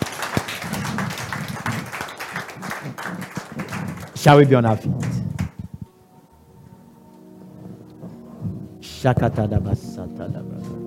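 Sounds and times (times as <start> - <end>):
audience clapping as a clap offering: 0.0 - 5.7
speech: 4.2 - 5.1, 9.0 - 10.6.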